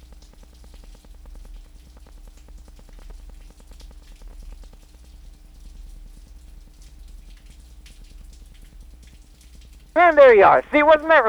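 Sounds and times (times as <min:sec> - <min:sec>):
rain falling outside an open window: 0:10.0 - 0:11.2
speech: 0:10.0 - 0:11.2.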